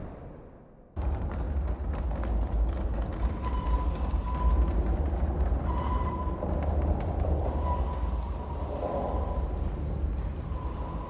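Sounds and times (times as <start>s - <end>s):
steam train rolling along a railway: 1.0s - 11.0s
thin metallic squeal of steam train: 3.2s - 11.0s.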